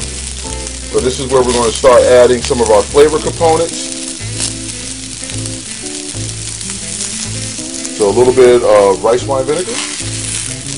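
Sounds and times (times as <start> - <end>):
rice and vegetables frying in a hot pan: 0.0 - 10.7
speech: 0.9 - 4.0, 8.0 - 9.9.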